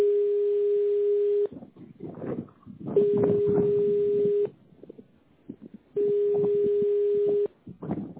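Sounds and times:
telephone ringback tone while a call waits for an answer: 0.0 - 1.5, 3.0 - 4.5, 6.0 - 7.5.

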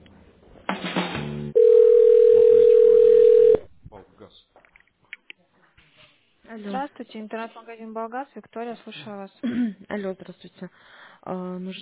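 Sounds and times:
telephone line tone while a call is transferred: 1.6 - 3.6
speech: 6.6 - 11.8.

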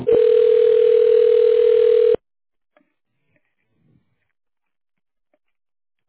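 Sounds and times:
telephone dialing tones while a call is transferred: 0.1 - 2.2.

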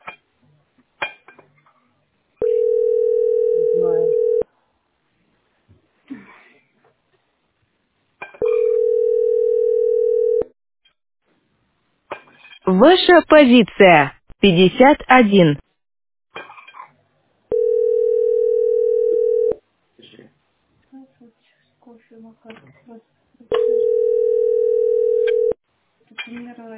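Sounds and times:
phone line ringback tone while placing a call: 2.4 - 4.4, 8.4 - 10.5, 17.5 - 19.6, 23.6 - 25.6
speech: 12.8 - 15.6.

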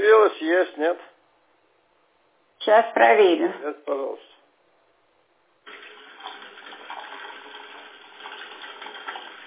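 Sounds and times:
speech: 2.7 - 4.4
cold water pouring from a tap: 5.7 - 9.4.

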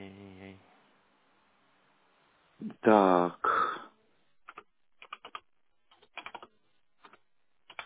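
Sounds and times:
speech: 2.6 - 3.5
keys clattering on a computer keyboard: 4.5 - 7.8.

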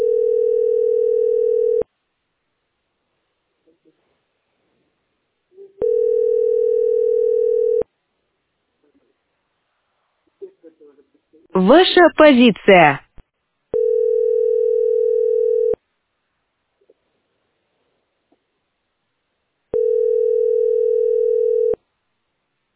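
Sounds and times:
telephone tone on an overloaded phone line: 0.0 - 1.8, 5.8 - 7.8, 13.8 - 15.8, 19.8 - 21.8
speech: 11.6 - 13.0.

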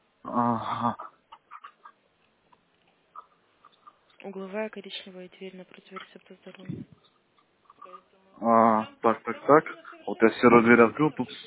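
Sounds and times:
speech: 0.4 - 1.1, 4.3 - 7.2, 7.9 - 11.4
chicken clucking in a courtyard by a residential building entrance: 1.0 - 2.0, 3.1 - 4.2, 5.9 - 8.1.

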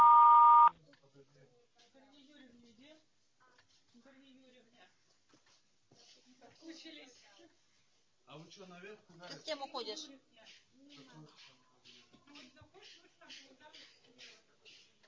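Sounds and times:
answering machine beep: 0.0 - 0.7
speech: 8.5 - 10.6.

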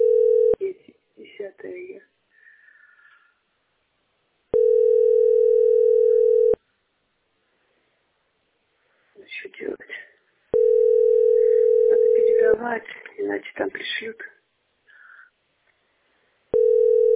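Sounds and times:
long steady telephone line tones while on hold: 0.0 - 0.6, 4.6 - 6.6, 10.6 - 12.6, 16.5 - 17.1
person speaking: 0.6 - 2.2, 9.2 - 10.2, 11.4 - 14.4.

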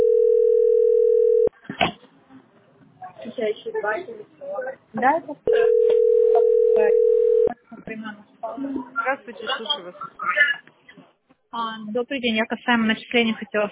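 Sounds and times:
telephone ringback tones on a call to a billing service centre: 0.0 - 1.5, 5.5 - 7.5
speech: 3.4 - 7.2, 7.9 - 10.6, 11.5 - 13.6.

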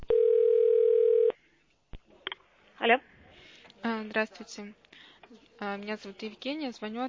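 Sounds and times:
telephone line tone while a call is being connected: 0.1 - 1.3
speech: 2.9 - 3.1, 4.1 - 4.9, 5.6 - 7.0.

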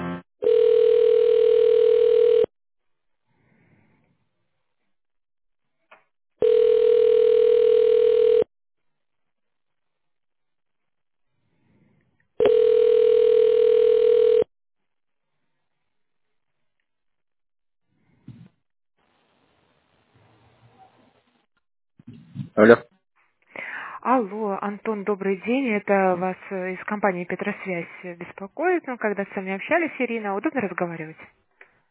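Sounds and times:
telephone ringback tone while a call is transferred: 0.5 - 2.5, 6.4 - 8.5, 12.4 - 14.5
speech: 22.6 - 22.9, 24.7 - 31.5.

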